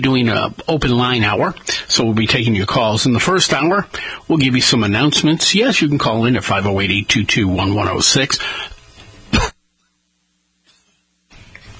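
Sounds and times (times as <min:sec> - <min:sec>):
speech: 0:00.0 - 0:08.7
low noise: 0:00.0 - 0:11.7
loud sharp cough: 0:09.3 - 0:09.6.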